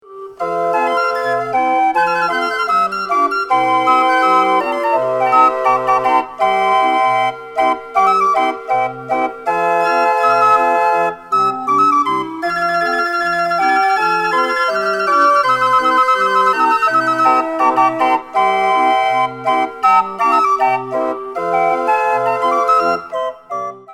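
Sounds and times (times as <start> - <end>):
violin and pan playing: 0.4 - 23.0.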